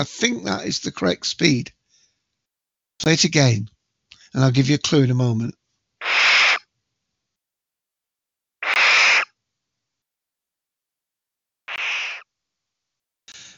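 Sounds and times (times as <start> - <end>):
speech: 0.0 - 1.8, 3.0 - 3.7, 4.3 - 6.2
barn owl harsh hissing screech: 6.0 - 6.7, 8.6 - 9.4, 11.7 - 12.3.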